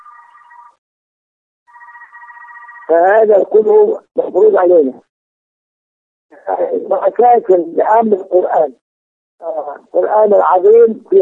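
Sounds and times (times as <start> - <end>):
telephone ringing: 0.0 - 0.8, 1.7 - 3.4
speech: 2.9 - 5.1, 6.4 - 8.8, 9.4 - 11.1.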